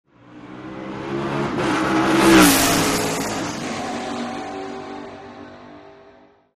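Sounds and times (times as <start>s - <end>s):
sports car passing fast close up: 0.1s - 6.4s.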